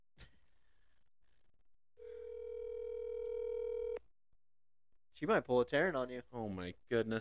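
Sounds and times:
ringback tone from an outgoing phone call: 0:02.0 - 0:04.0
speech: 0:05.2 - 0:07.2.

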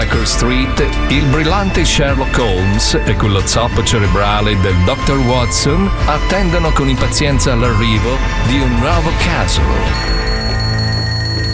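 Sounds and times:
speech: 0:00.3 - 0:10.2
telephone ringing with a metallic bell: 0:09.4 - 0:11.5.

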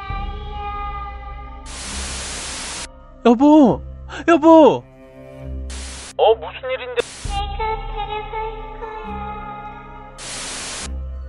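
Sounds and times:
distorted electronic buzz droning: 0:01.7 - 0:02.9, 0:05.7 - 0:06.2, 0:07.0 - 0:07.4, 0:10.2 - 0:10.9
harsh bursts of phone-line static: 0:01.7 - 0:02.9, 0:07.0 - 0:07.2
speech: 0:03.2 - 0:04.9, 0:06.2 - 0:07.1.

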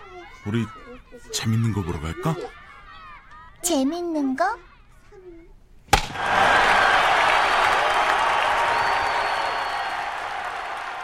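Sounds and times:
large crowd at baseball stadium cheering: 0:00.0 - 0:03.6, 0:06.0 - 0:11.0
speech: 0:00.4 - 0:02.6, 0:03.6 - 0:04.7.

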